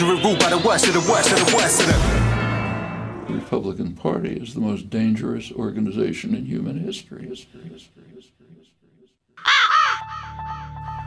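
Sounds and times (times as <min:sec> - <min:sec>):
speech: 0:00.0 - 0:02.3, 0:03.3 - 0:08.8
quicker echo-like caw repeats: 0:08.9 - 0:11.0
raven cawing harshly: 0:09.4 - 0:10.8.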